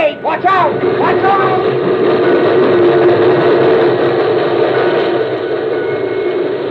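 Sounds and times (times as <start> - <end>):
steam locomotive roaring past with hissing rumbling noise: 0.0 - 6.6.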